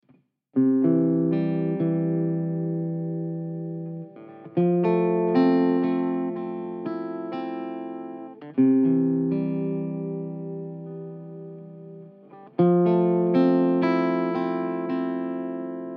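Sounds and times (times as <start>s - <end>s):
guitar improvising chill groove in C: 0.6s - 15.9s.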